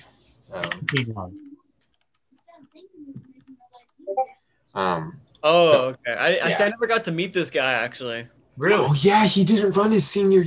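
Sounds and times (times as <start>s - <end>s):
speech: 0.5s - 1.4s, 4.8s - 10.4s
typing a message on a computer keyboard: 1.8s - 4.0s.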